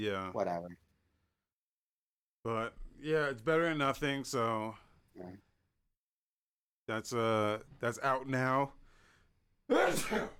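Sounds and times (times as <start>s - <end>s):
speech: 0.0s - 0.9s, 2.4s - 5.5s, 6.9s - 8.8s, 9.7s - 10.3s
loud sneeze: 9.7s - 10.3s.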